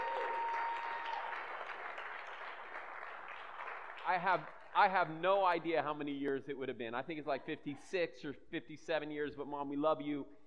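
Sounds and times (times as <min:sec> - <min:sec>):
room full of people applauding: 0:00.0 - 0:04.8
speech: 0:04.1 - 0:10.4.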